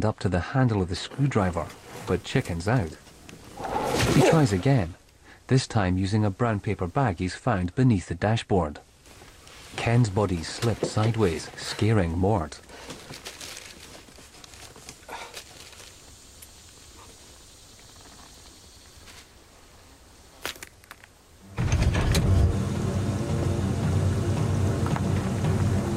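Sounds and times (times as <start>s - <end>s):
speech: 0.0s - 3.0s, 4.1s - 8.9s, 9.8s - 13.2s
truck engine starting: 21.5s - 25.9s.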